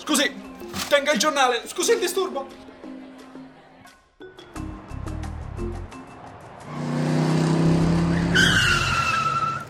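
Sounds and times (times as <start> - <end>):
speech: 0.1 - 2.7
DeLorean car engine revving: 6.4 - 9.6
DeLorean car tires squealing as the wheels skid: 6.4 - 9.6.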